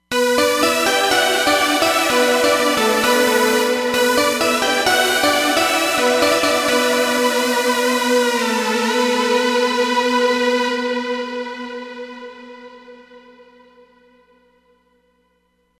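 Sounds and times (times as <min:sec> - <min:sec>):
Roland Fantom XR synthesizer sound: 0:00.1 - 0:10.7.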